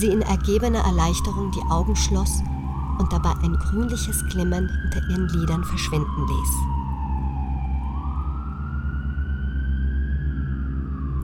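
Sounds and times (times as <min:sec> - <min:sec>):
speech: 0:00.0 - 0:06.7
distant emergency vehicle siren wailing: 0:00.0 - 0:11.2
low rumble of engine or traffic noise: 0:00.0 - 0:11.2.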